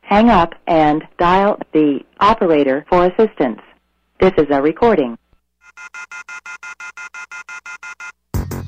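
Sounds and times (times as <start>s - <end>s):
speech: 0.1s - 5.2s
telephone ringing with electronic trill: 5.6s - 8.3s.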